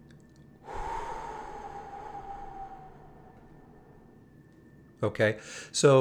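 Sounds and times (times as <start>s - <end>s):
deep breath in and out: 0.6s - 4.5s, 5.4s - 5.7s
speech: 5.0s - 5.9s.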